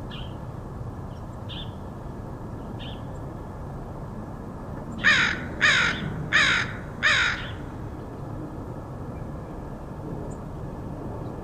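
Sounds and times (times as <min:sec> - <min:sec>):
crow calling harsh raspy caws in Portland Oregon: 0:05.0 - 0:07.7.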